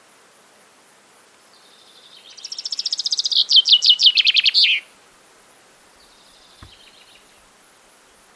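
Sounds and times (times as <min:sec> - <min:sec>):
common chaffinch singing: 0:01.6 - 0:04.9, 0:05.9 - 0:08.2.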